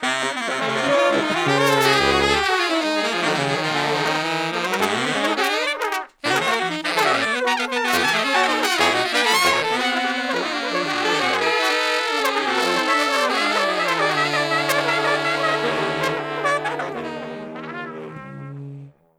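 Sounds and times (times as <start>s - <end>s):
traditional horn section noise: 0.0s - 19.1s.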